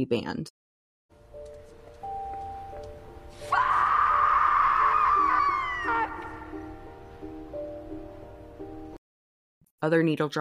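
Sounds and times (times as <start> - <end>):
speech: 0.0 - 0.6, 9.8 - 10.4
woman letting out a loud raw primal scream: 3.5 - 6.6.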